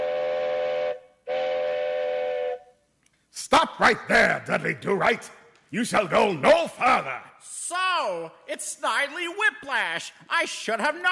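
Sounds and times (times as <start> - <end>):
train whistle blasts: 0.0 - 2.8
speech: 3.4 - 11.1.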